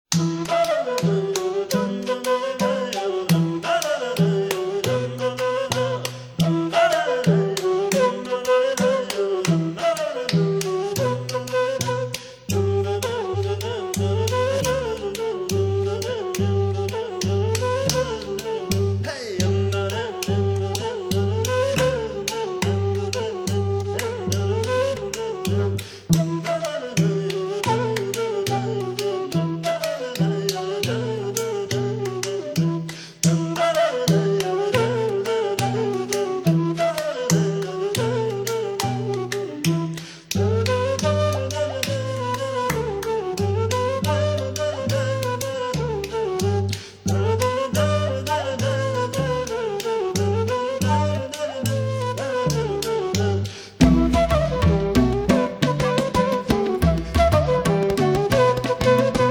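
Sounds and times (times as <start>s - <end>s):
Bulgarian folk tune: 0.0s - 59.2s.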